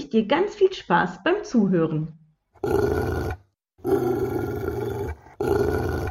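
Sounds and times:
speech: 0.1 - 4.0
dog growling in rough throaty bursts: 2.6 - 6.0.

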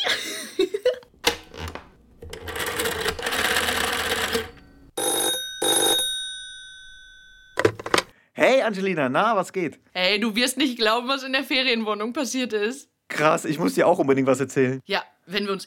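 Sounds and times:
telephone ringing tone on an outgoing call: 2.4 - 8.0
speech: 8.4 - 15.6.

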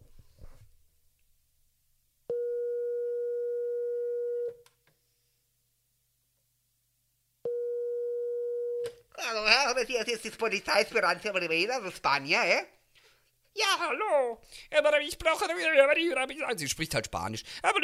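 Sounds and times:
telephone ringback tone: 2.3 - 4.5, 7.5 - 8.8
speech: 9.8 - 12.8, 13.5 - 17.8.

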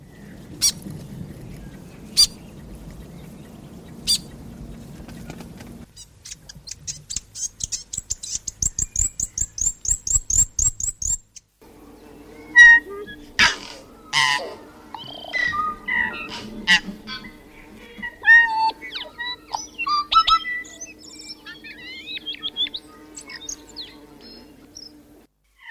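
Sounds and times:
New Zealand fantail chirping and twittering: 0.0 - 25.2
low rumbling background: 0.1 - 5.9, 11.6 - 25.3
steady low hum: 0.2 - 5.9, 11.6 - 25.3
tui singing whistles, clicks and chirps: 6.2 - 11.2.

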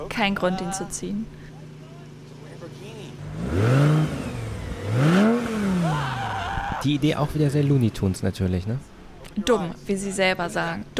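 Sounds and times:
speech: 0.1 - 1.4, 6.8 - 10.9
Lamborghini sports car engine revving hard: 2.1 - 6.3.

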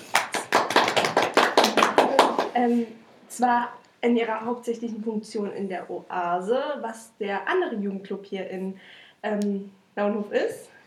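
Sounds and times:
hands clapping in a quick steady rhythm: 0.0 - 2.6
speech: 2.6 - 10.8.

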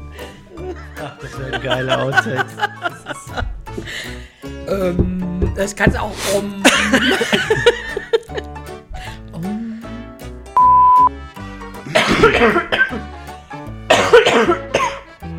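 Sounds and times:
laughter: 0.2 - 4.2, 6.6 - 8.5
speech: 1.0 - 8.0, 12.4 - 12.7
harsh hacking coughs: 6.2 - 8.0, 11.8 - 13.1, 13.9 - 15.1
steady beep tone: 10.6 - 11.1.

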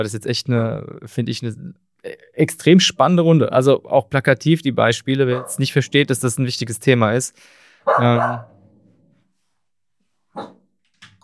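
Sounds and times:
speech: 0.0 - 8.5
dog barking: 5.3 - 5.6, 7.8 - 8.6, 10.4 - 10.6.

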